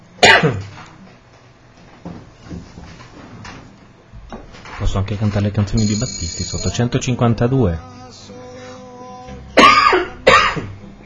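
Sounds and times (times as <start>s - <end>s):
harsh coughs: 0.2s - 0.7s, 9.6s - 10.8s
speech: 0.4s - 0.7s, 4.9s - 8.1s.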